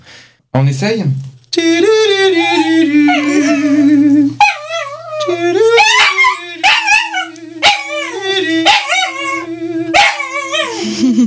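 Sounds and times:
speech: 0.5 - 4.4
person singing: 1.5 - 11.2
dog howling and yipping: 2.0 - 10.9.

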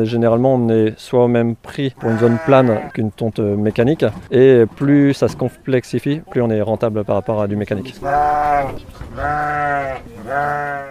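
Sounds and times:
speech: 0.0 - 10.8
sheep bleating: 2.0 - 3.0, 7.9 - 10.8.

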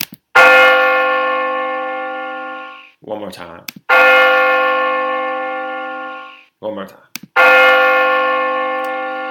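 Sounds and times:
deep church bell tolling: 0.4 - 2.9, 3.9 - 6.5, 7.4 - 9.2
speech: 3.2 - 4.4, 6.6 - 7.5.

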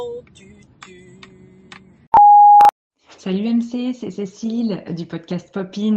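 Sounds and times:
electronic answering machine beep: 2.2 - 2.7
speech: 3.2 - 5.9.

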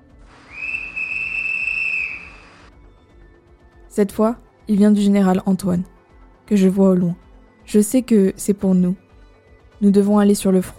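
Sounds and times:
shrill sustained whistle blast: 0.4 - 2.7
speech: 4.0 - 5.9, 6.5 - 9.0, 9.8 - 10.7.

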